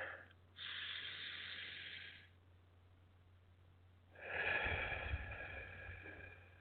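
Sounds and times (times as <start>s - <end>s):
deep breath in and out: 0.0s - 2.4s, 4.1s - 6.6s
faint low steady hum: 0.0s - 6.6s.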